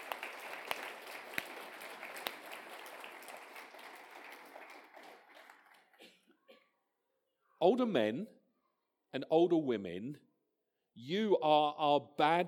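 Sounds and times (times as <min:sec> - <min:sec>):
audience applause: 0:00.0 - 0:06.0
sharp claps: 0:00.0 - 0:06.1
speech: 0:07.6 - 0:08.4, 0:09.1 - 0:10.3, 0:11.0 - 0:12.4.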